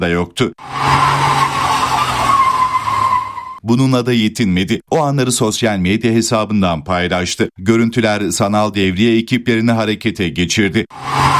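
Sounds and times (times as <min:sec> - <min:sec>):
speech: 0:00.0 - 0:01.3, 0:03.6 - 0:11.3
luxury car tires squealing while drifting on a street at night in Istanbul: 0:00.6 - 0:03.6, 0:10.9 - 0:11.3.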